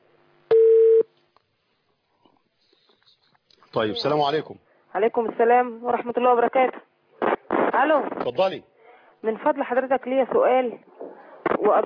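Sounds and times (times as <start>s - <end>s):
telephone line tone as a call comes in: 0.5s - 1.0s
speech: 3.7s - 6.9s, 7.8s - 10.9s, 11.6s - 11.8s.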